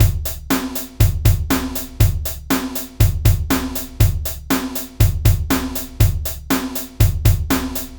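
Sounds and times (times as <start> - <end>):
ground beat: 0.0 - 7.9.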